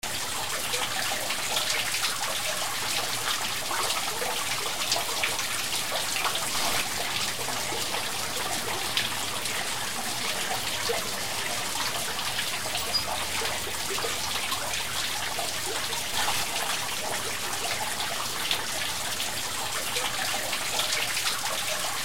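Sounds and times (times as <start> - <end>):
waterfall flowing: 0.1 - 22.0.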